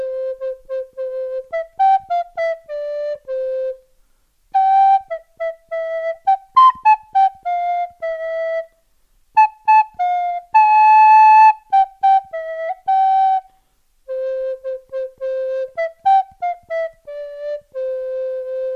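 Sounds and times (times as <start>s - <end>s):
simple tune on a small shepherd's pipe played by a boy herding: 0.0s - 3.8s, 4.6s - 8.7s, 9.4s - 13.5s, 14.1s - 18.7s.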